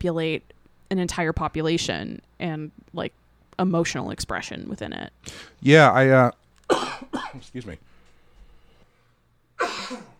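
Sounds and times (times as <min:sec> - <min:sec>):
speech: 0:00.0 - 0:06.4, 0:07.4 - 0:07.9
harsh cough: 0:06.7 - 0:07.4, 0:09.6 - 0:10.1.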